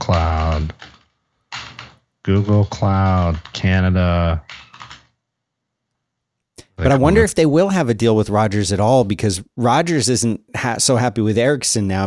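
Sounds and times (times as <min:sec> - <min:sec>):
typing on a computer keyboard: 0:00.0 - 0:03.8, 0:04.4 - 0:05.2
speech: 0:02.3 - 0:04.6, 0:06.8 - 0:12.0.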